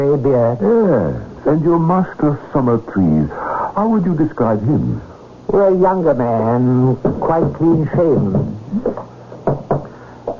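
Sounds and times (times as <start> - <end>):
speech: 0.0 - 9.6
man tapping on wooden closet door: 7.0 - 8.6, 9.4 - 10.3.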